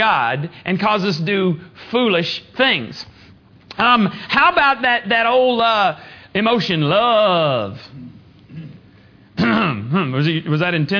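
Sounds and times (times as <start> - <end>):
speech: 0.0 - 3.1, 3.8 - 8.1, 9.4 - 10.9
man clearing his throat: 8.5 - 10.0.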